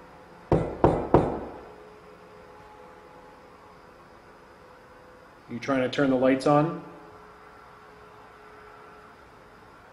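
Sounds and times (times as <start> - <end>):
knocking on a wall: 0.5 - 1.6
speech: 5.5 - 6.9.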